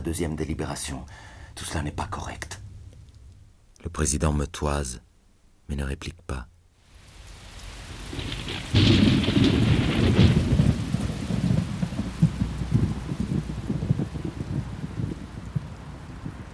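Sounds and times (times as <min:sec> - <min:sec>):
speech: 0:00.1 - 0:02.6, 0:03.8 - 0:05.1, 0:05.7 - 0:06.5
heavy rain pouring: 0:06.8 - 0:16.5
loud crack of thunder rolling into deep rumble: 0:07.5 - 0:16.5.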